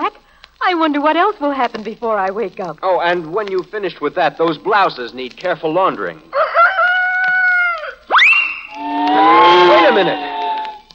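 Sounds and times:
speech: 0.7 - 6.5, 10.0 - 10.3
rooster crowing: 6.3 - 10.9.

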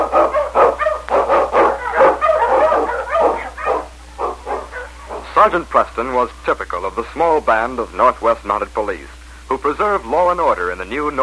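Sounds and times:
Eskimo lead dog barking and yipping: 0.0 - 5.4
speech: 5.4 - 11.2.

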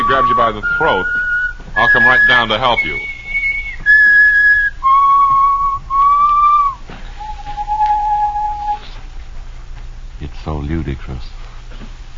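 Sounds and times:
person whistling a short slow tune of sustained notes: 0.0 - 9.0
speech: 0.1 - 1.2, 1.8 - 3.1, 10.7 - 11.3.

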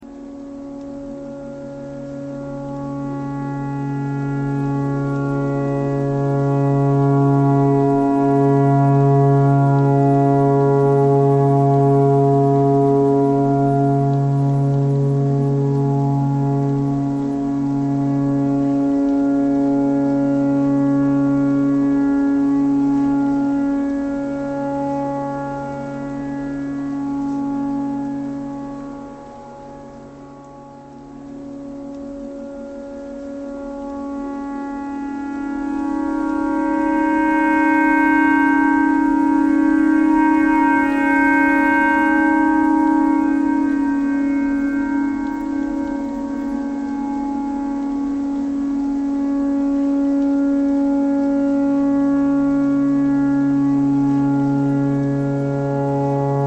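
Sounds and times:
tornado siren: 0.0 - 56.4
clarinet playing pentatonic phrases: 0.2 - 56.4.

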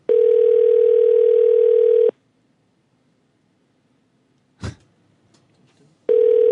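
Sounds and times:
telephone dial tone after a disconnected call: 0.1 - 2.1, 6.1 - 6.4.

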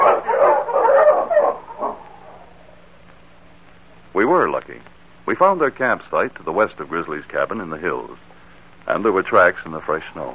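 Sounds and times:
dog barking: 0.0 - 2.5
speech: 4.5 - 8.3, 8.9 - 10.3.

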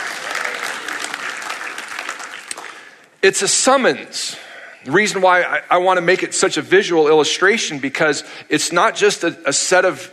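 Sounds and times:
church audience applauding: 0.0 - 3.2
speech: 3.2 - 10.1.

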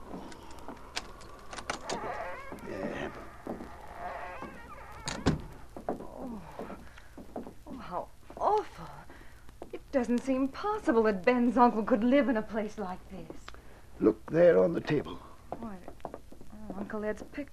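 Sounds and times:
key rattling in a lock: 0.0 - 2.1
door creaking open: 0.0 - 7.6
lock clunking: 0.1 - 2.6, 3.4 - 5.6
speech: 10.0 - 13.3, 14.0 - 15.2, 16.9 - 17.5.

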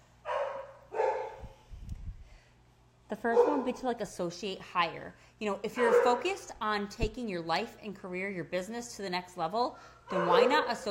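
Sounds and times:
dog barking excitedly: 0.3 - 1.5, 3.3 - 3.8, 5.7 - 6.5, 10.1 - 10.8
speech: 3.1 - 10.8.

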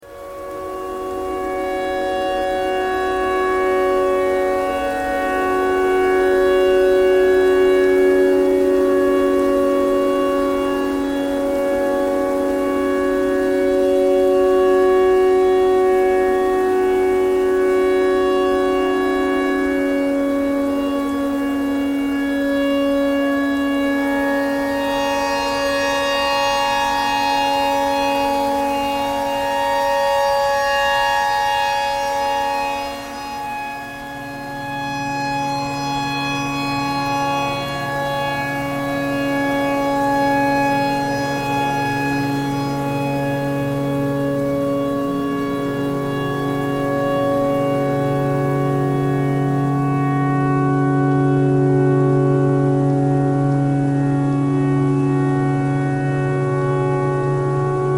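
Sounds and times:
tornado siren with pentatonic tones: 0.0 - 57.9.

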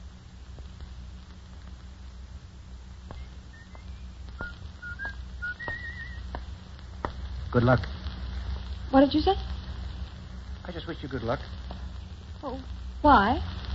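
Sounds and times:
steady hiss of rain-like noise: 0.0 - 13.7
man whistling a short wavering tune as he walks: 3.2 - 6.2
speech: 7.6 - 8.0, 8.9 - 9.6, 10.8 - 11.6, 12.4 - 13.5.

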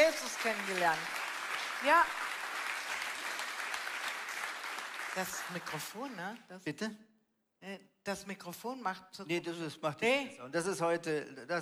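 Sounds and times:
speech: 0.0 - 1.2, 1.8 - 2.3, 5.2 - 11.6
audience applause: 0.0 - 6.1.

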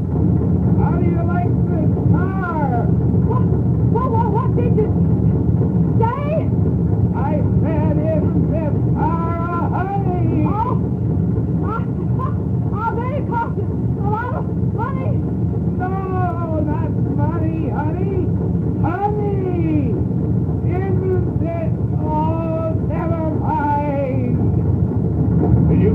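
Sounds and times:
early gasoline buggy engine rumbling and rattling: 0.0 - 25.9
people speaking in raised voices: 0.8 - 5.0, 6.0 - 6.5, 7.2 - 10.8, 11.6 - 15.2, 15.8 - 24.4.

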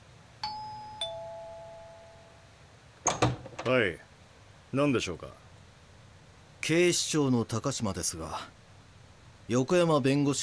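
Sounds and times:
doorbell chiming a two-tone ding-dong: 0.4 - 2.4
speech: 3.6 - 4.1, 4.7 - 5.4, 6.6 - 8.6, 9.5 - 10.4.

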